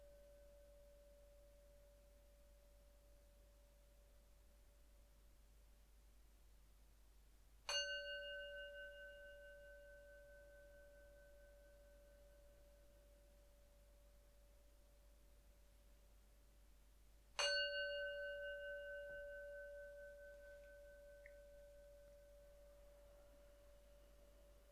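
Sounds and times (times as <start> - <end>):
meditation bell struck and ringing: 7.7 - 14.4, 17.4 - 24.7.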